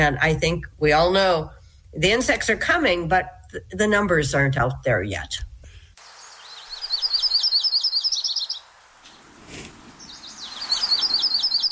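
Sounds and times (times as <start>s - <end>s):
speech: 0.0s - 5.5s
faint hiss: 0.0s - 11.6s
yellow-rumped warbler singing trilling phrases: 6.1s - 9.2s, 9.9s - 11.6s.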